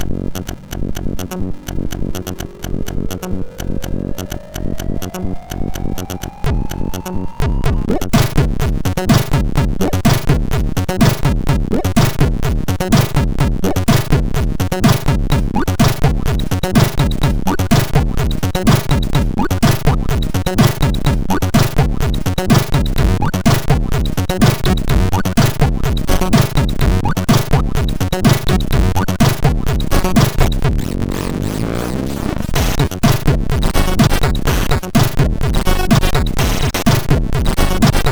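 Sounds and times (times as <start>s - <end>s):
MOS6581R2 SID chip bass echo: 0.0s - 38.0s.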